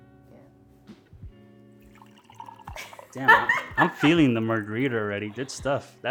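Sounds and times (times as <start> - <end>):
voice mimicking liquid being poured into a glass: 1.9 - 5.1
laughter: 2.8 - 6.0
speech: 3.1 - 6.1.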